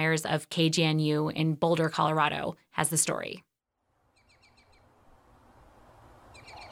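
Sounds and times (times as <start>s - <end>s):
speech: 0.0s - 3.5s
outdoor hiss: 3.9s - 6.6s
migratory birds chirping and singing: 4.1s - 4.9s, 6.2s - 6.6s.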